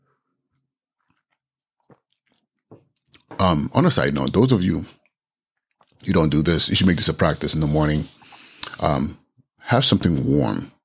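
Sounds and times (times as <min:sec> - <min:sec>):
person sipping hot tea: 0:00.0 - 0:03.3, 0:05.0 - 0:06.1, 0:07.8 - 0:09.0
swallowing: 0:00.4 - 0:03.4, 0:04.9 - 0:06.2
speech: 0:03.4 - 0:05.0, 0:06.1 - 0:10.8.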